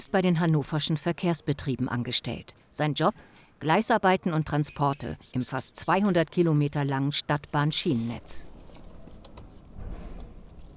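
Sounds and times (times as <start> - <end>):
speech: 0.0 - 8.5
bunch of keys jangling while tried in locks: 8.5 - 9.6.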